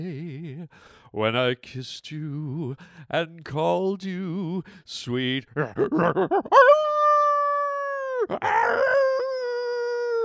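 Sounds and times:
speech: 0:00.0 - 0:07.0, 0:08.2 - 0:09.2
wolf howling: 0:06.5 - 0:10.2.

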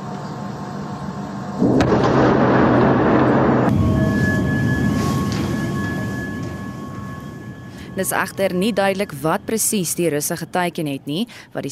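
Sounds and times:
muffled underground explosion with heavy rumbling roar: 0:01.6 - 0:06.4
speech: 0:08.0 - 0:11.6.

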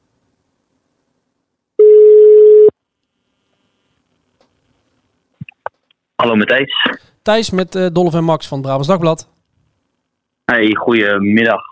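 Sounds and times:
telephone ringback tone: 0:01.8 - 0:02.7
speech: 0:06.3 - 0:09.3, 0:10.5 - 0:11.7.

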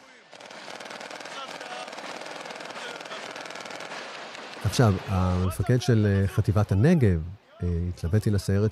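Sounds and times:
dense continuous automatic gunfire: 0:00.3 - 0:04.6
speech: 0:04.6 - 0:08.6.

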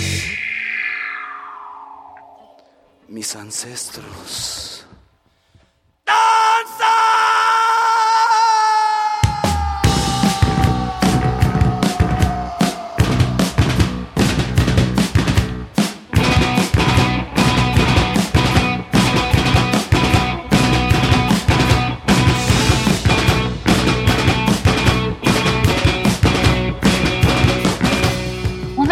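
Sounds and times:
eerie sustained wavering wind-like tone: 0:00.0 - 0:04.1
speech: 0:03.1 - 0:04.7
shouted vocals: 0:06.0 - 0:14.0
driving drums: 0:09.2 - 0:28.9
live rock band playing loud and dense: 0:09.8 - 0:28.9.

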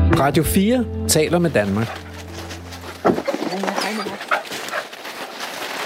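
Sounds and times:
speech: 0:00.2 - 0:02.1
hunting dogs, a cocker spaniel and labrador retrievers whimpering and whining: 0:01.9 - 0:04.9.

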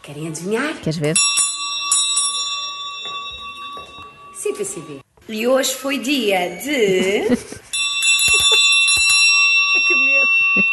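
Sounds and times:
speech: 0:00.0 - 0:01.4, 0:04.6 - 0:07.7
hand bell rung at a workplace to celebrate a signed property deed: 0:01.2 - 0:05.0, 0:07.7 - 0:10.7.

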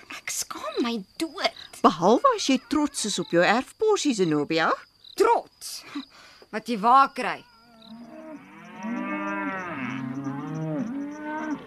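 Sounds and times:
faint high hiss: 0:00.0 - 0:11.6
speech: 0:00.8 - 0:07.5
cattle mooing: 0:07.6 - 0:11.6.

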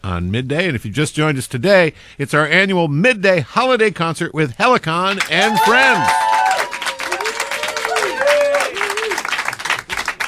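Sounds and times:
speech: 0:00.0 - 0:06.4
live studio audience applause: 0:05.1 - 0:10.2
cheering and whooping voices: 0:05.2 - 0:09.4.

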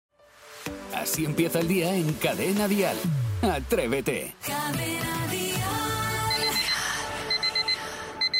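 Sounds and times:
music: 0:00.1 - 0:08.3
speech: 0:01.0 - 0:05.1
alarm clock with rapid bright electronic beeps: 0:06.4 - 0:08.3.

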